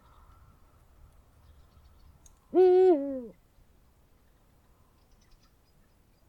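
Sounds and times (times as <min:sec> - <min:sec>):
Eurasian eagle-owl uttering a deep hoot: 0:02.5 - 0:03.4.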